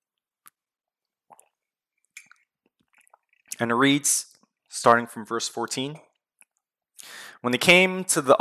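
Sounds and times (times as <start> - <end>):
person swallowing water: 1.3 - 1.6
person sipping water with soft wet slurps: 1.3 - 3.6
speech: 3.6 - 6.1, 7.0 - 8.3.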